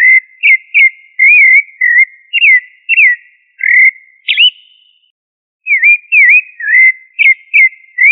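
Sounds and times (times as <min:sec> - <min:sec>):
Sabiá thrush of family Turdidae singing whistled and warbled phrases: 0:00.0 - 0:05.1, 0:05.7 - 0:08.1.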